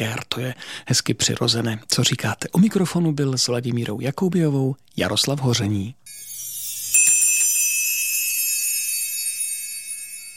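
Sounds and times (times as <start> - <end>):
speech: 0.0 - 6.3
small bell ringing: 6.1 - 10.3.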